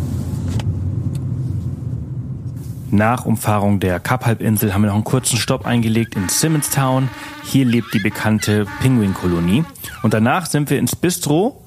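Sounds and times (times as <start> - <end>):
car engine and road noise on a road trip: 0.0 - 2.9
speech: 2.9 - 11.6.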